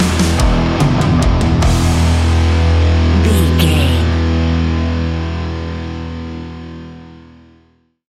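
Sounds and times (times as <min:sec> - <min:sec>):
powerful heavy metal drums: 0:00.0 - 0:04.1
very heavy distorted heavy metal guitars: 0:00.0 - 0:07.8.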